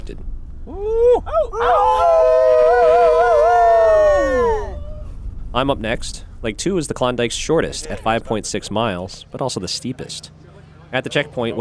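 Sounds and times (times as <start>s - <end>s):
speech: 0.1s - 2.4s, 5.6s - 11.5s
people in plush wolf hats howling in the dark: 0.7s - 5.2s
people whooping and cheering on a runner: 0.7s - 5.2s.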